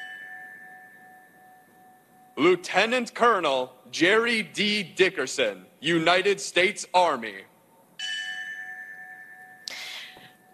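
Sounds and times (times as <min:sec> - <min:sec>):
memorial bell ringing: 0:00.0 - 0:02.6, 0:08.0 - 0:10.5
speech: 0:02.4 - 0:07.5.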